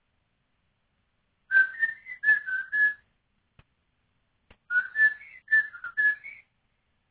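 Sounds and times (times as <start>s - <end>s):
unidentified bird whistling clear fluty notes: 1.5s - 3.0s, 4.7s - 6.5s.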